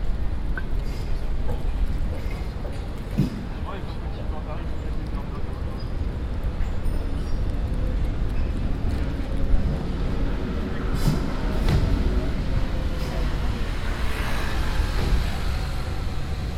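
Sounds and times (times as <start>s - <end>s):
low traffic rumble on a busy city street: 0.0s - 16.5s
passing vehicles on a busy city street: 0.0s - 16.5s.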